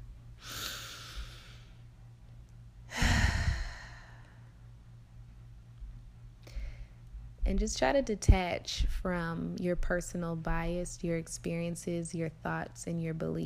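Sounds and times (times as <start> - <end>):
person breathing deeply during a guided exercise: 0.4 - 1.8, 2.9 - 4.5
speech: 7.5 - 13.4.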